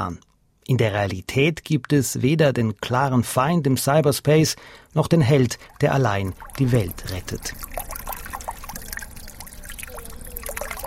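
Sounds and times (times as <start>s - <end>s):
speech: 0.0s - 8.0s
low rumble: 4.6s - 10.8s
fountain splashing outside a building: 5.2s - 10.8s.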